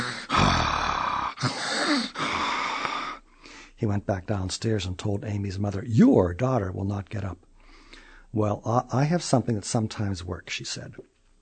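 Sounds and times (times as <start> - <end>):
voice imitating snoring with rasping breaths: 0.0 - 3.2
speech: 3.8 - 7.5, 8.3 - 11.1.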